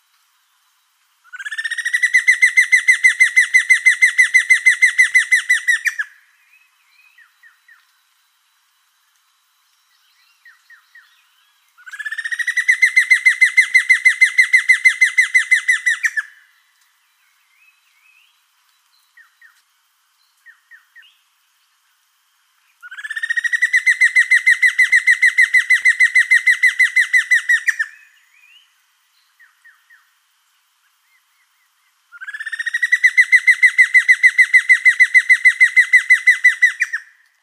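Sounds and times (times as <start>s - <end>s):
giant antshrike calling: 1.3s - 6.2s, 11.8s - 16.4s, 22.8s - 28.6s, 32.1s - 37.2s.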